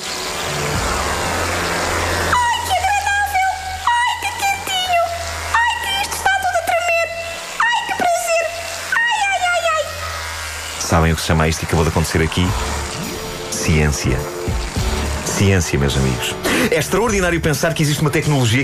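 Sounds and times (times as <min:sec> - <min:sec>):
hissy water-like noise: 0:00.0 - 0:18.6
speech: 0:11.2 - 0:12.9, 0:13.6 - 0:14.8, 0:15.4 - 0:18.6.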